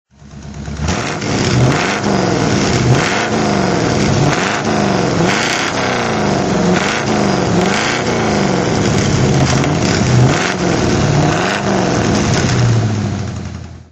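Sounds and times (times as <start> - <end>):
1960 Buick Electra 225 convertible engine throttle: 0.2 - 13.9.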